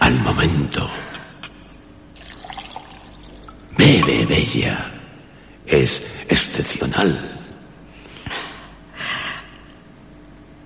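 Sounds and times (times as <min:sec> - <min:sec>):
low steady hum: 0:00.0 - 0:10.6
speech: 0:00.1 - 0:01.0, 0:04.3 - 0:05.0, 0:05.7 - 0:07.4
pure spring water pouring into a glass: 0:02.2 - 0:04.1.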